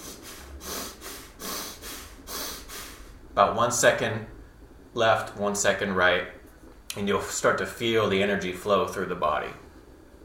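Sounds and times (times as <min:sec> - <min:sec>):
rhythmic breathing during seated torso twists: 0:00.0 - 0:03.4
speech: 0:03.4 - 0:04.4, 0:05.0 - 0:09.6.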